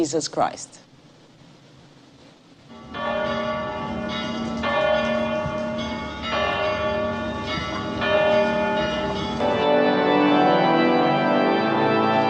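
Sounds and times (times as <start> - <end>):
speech: 0.0 - 0.9
church bells ringing: 2.7 - 12.2.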